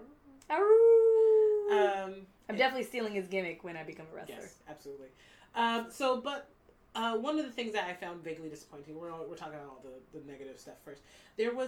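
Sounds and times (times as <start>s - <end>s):
person imitating a wolf howl: 0.0s - 2.0s
speech: 0.4s - 0.8s, 2.2s - 11.6s.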